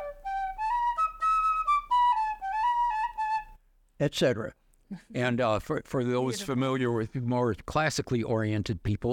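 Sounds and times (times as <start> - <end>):
penny whistle playing a short tune: 0.0 - 3.6
speech: 4.0 - 9.1.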